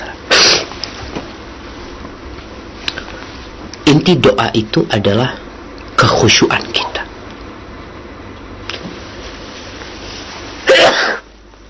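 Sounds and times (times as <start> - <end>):
quiet room hum: 0.0 - 11.6
sharp loud sneeze: 0.3 - 0.7, 10.6 - 11.3
speech: 3.9 - 5.4, 6.0 - 6.9.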